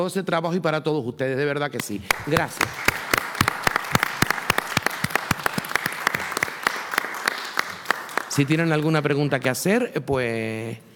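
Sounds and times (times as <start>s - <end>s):
speech: 0.0s - 3.1s, 8.4s - 10.9s
crowd applauding: 2.1s - 9.5s.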